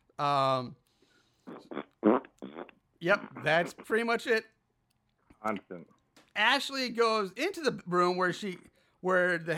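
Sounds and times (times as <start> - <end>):
speech: 0.2 - 0.8, 1.5 - 4.5, 5.4 - 9.5
person making fart noises with voice: 1.4 - 4.0.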